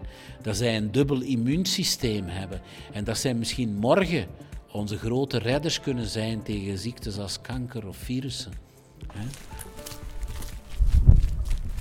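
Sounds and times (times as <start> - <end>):
speech: 0.1 - 9.8
footsteps walking through a gallery across a hard floor: 9.0 - 11.7.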